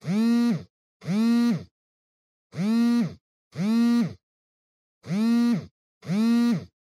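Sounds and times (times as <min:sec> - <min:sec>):
cell phone vibrating on a cushion: 0:00.0 - 0:01.7, 0:02.5 - 0:04.2, 0:05.0 - 0:06.8.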